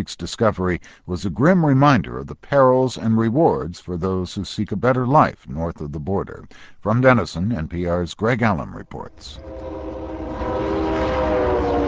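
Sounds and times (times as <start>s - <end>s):
speech: 0.0s - 10.0s
freight train carrying livestock and grain passing through Denison: 9.4s - 11.8s.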